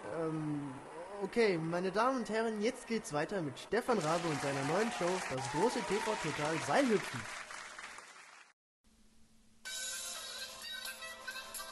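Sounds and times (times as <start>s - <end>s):
speech: 1.3s - 7.4s
applause: 3.9s - 8.6s.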